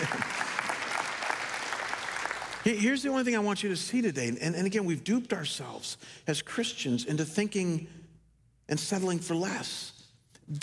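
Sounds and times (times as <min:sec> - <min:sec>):
audience clapping: 0:00.0 - 0:02.8
speech: 0:02.6 - 0:08.0, 0:08.7 - 0:10.6.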